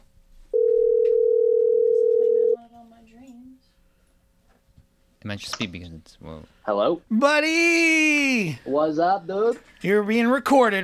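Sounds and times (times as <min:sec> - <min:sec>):
phone call ringing tone: 0:00.5 - 0:02.6
speech: 0:05.2 - 0:10.8.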